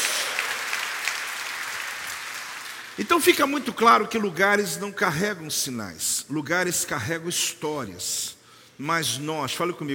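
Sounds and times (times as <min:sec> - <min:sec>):
large audience applauding: 0:00.0 - 0:03.0
speech: 0:03.0 - 0:09.9.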